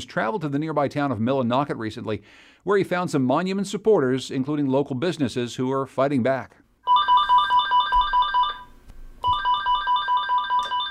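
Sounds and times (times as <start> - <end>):
speech: 0.0 - 6.6
telephone ringing at real estate office: 6.8 - 10.8.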